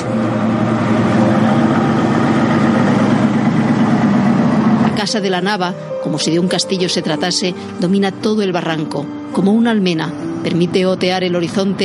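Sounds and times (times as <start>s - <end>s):
safari vehicle engine idling: 0.0s - 7.8s
speech: 5.1s - 11.8s.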